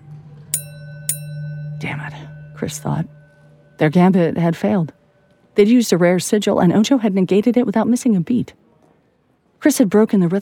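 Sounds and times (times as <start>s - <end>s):
steady low hum: 0.0s - 7.0s
bright bell ringing with sustained metallic tone: 0.6s - 5.4s
speech: 1.8s - 3.2s, 3.8s - 5.0s, 5.6s - 8.6s, 9.6s - 10.4s.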